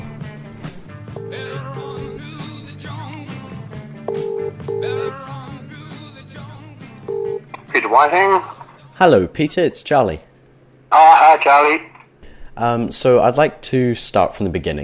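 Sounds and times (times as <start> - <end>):
steady bed of music: 0.0 - 9.4
short electronic telephone dialing tones: 1.2 - 2.2, 4.1 - 5.1, 7.0 - 7.7
speech: 7.9 - 10.3, 10.9 - 11.9, 12.6 - 14.8.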